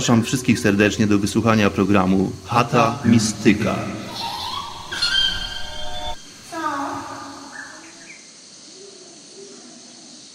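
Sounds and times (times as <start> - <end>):
speech: 0.0 - 4.3
steady ambient background: 0.0 - 8.3
birds singing with bright whistling calls: 2.6 - 10.3.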